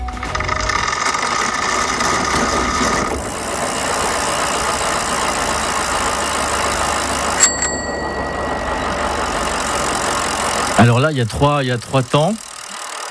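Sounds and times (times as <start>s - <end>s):
motor running with mid-pitched hum: 0.0s - 13.0s
bright metallic ping: 7.4s - 10.7s
speech: 10.8s - 12.4s.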